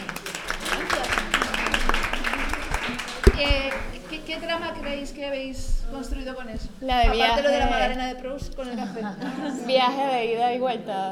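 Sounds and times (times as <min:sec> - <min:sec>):
small group clapping: 0:00.0 - 0:05.2
murmured voices: 0:00.0 - 0:11.1
speech: 0:03.4 - 0:11.1
laughter: 0:08.6 - 0:10.0.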